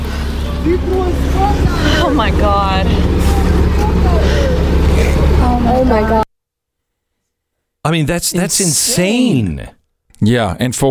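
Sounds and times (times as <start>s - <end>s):
people talking and exclaiming: 0.0s - 6.2s, 7.9s - 9.7s
low engine rumble of a bus and truck driving by: 0.0s - 6.3s
speech: 0.6s - 3.4s, 5.0s - 6.2s, 7.8s - 10.9s.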